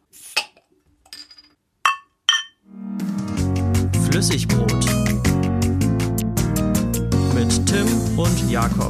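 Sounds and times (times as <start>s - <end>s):
beer glasses clinking in a toast: 1.2s - 2.6s
loud music: 2.7s - 8.8s
speech: 4.2s - 4.9s, 7.7s - 8.8s.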